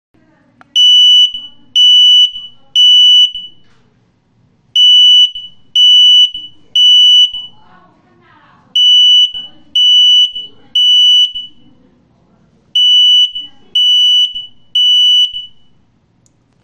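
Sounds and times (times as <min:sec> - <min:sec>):
smoke alarm beeping: 0:00.8 - 0:03.7, 0:04.8 - 0:07.6, 0:08.8 - 0:11.7, 0:12.8 - 0:15.8.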